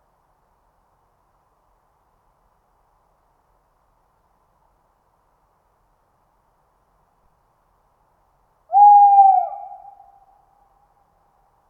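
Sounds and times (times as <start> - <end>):
Tawny owl giving a level clear hoot: 8.7 - 10.3.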